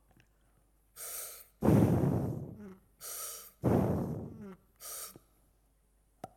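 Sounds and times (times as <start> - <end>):
breathing through a scuba regulator underwater: 1.0 - 5.2.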